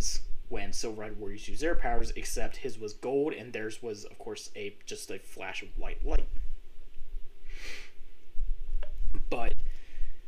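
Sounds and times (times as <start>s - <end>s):
speech: 0.0s - 6.5s, 9.3s - 9.6s
sharp intake of breath: 7.4s - 8.0s.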